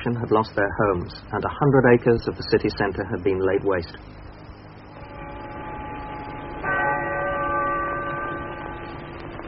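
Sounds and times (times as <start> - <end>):
speech: 0.0 - 4.2
steady hiss: 0.0 - 9.4
deep cathedral bell strike: 5.0 - 9.4.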